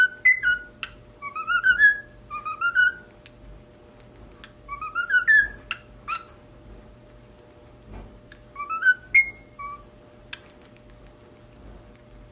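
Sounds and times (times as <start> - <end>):
cockatiel singing upward-slurred whistles: 0.0 - 3.1, 4.7 - 6.4, 8.5 - 9.9.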